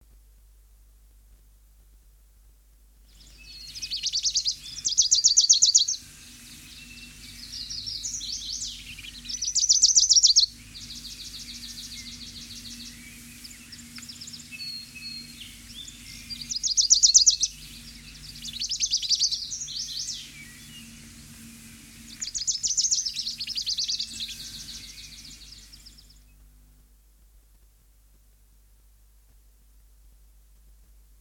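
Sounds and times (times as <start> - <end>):
songbirds: 3.0 - 31.1
Wilson's warbler: 3.1 - 26.4.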